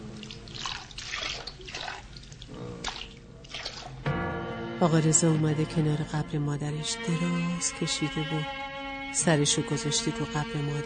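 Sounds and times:
water splashed over feet in a basin: 0:00.0 - 0:04.0
speech: 0:04.8 - 0:10.8.

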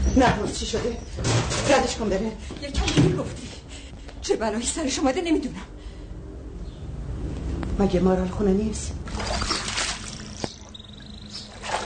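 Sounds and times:
speech: 0:00.2 - 0:03.6, 0:04.2 - 0:05.8, 0:07.8 - 0:09.4
pond water splashing and sloshing as someone washes their face: 0:09.0 - 0:11.8.

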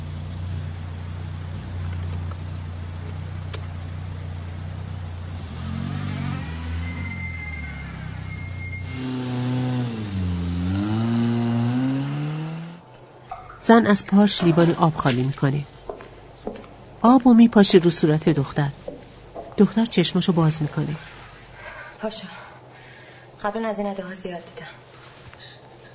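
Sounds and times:
car driving off: 0:00.0 - 0:12.9
car engine idling: 0:00.0 - 0:17.0
speech: 0:13.7 - 0:15.8, 0:17.0 - 0:18.8, 0:19.6 - 0:21.2, 0:22.0 - 0:22.4, 0:23.4 - 0:24.8.

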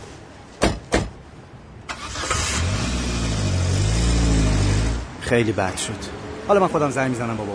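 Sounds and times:
car door slamming: 0:00.6 - 0:01.2
car engine starting and revving as the car pulls away: 0:01.9 - 0:05.2
speech: 0:05.3 - 0:07.5.

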